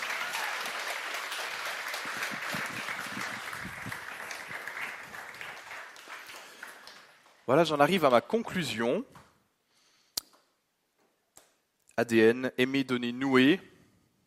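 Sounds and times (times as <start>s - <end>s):
audience applause, many hands clapping: 0.0s - 7.4s
speech: 7.5s - 9.2s, 12.0s - 13.7s.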